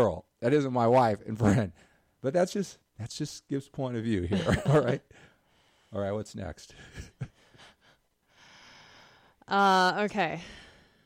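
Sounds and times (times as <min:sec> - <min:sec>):
speech: 0:00.0 - 0:05.3, 0:05.9 - 0:07.3, 0:09.5 - 0:10.6
person taking a deep breath: 0:07.5 - 0:09.4, 0:10.4 - 0:11.0.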